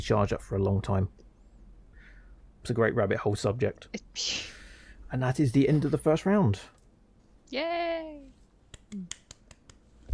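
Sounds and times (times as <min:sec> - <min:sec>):
speech: 0:00.0 - 0:01.2, 0:02.6 - 0:06.8, 0:07.5 - 0:09.2
slow sarcastic hand claps: 0:08.7 - 0:09.9.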